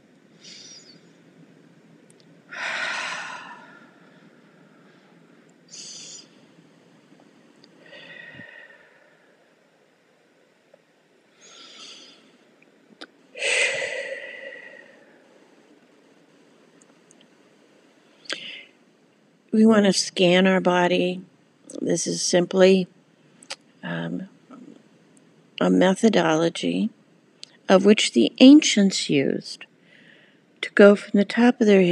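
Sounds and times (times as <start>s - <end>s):
slow deep breaths during a guided breathing exercise: 0.3s - 1.3s, 2.5s - 6.6s, 7.6s - 9.9s, 11.3s - 12.5s, 13.3s - 15.8s, 17.9s - 18.9s, 29.8s - 30.6s
speech: 19.6s - 23.0s, 25.6s - 27.0s, 27.7s - 29.7s, 30.7s - 31.9s.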